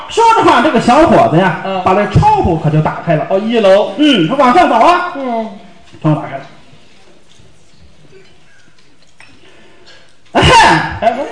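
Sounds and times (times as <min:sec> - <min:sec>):
speech: 0:00.1 - 0:06.5, 0:10.7 - 0:11.3
performer's voice imitating a cough used as a secret signal: 0:10.4 - 0:11.3.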